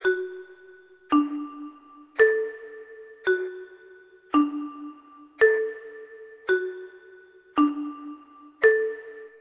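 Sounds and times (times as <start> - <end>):
marimba playing: 1.1 - 3.8, 4.4 - 7.0, 7.6 - 9.3.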